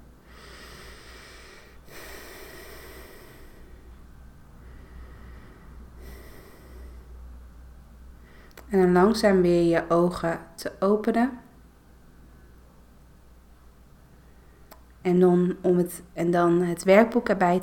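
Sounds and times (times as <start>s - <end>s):
low hum: 0.0s - 17.6s
deep breathing during a guided relaxation exercise: 0.2s - 7.4s, 8.1s - 8.7s
speech: 8.7s - 11.4s, 15.0s - 17.6s.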